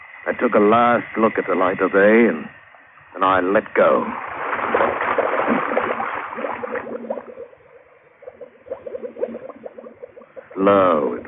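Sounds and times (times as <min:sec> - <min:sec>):
speech: 0:00.2 - 0:02.6, 0:03.2 - 0:04.7, 0:10.6 - 0:11.2
air bubbling from a diving helmet valve underwater: 0:04.0 - 0:11.2.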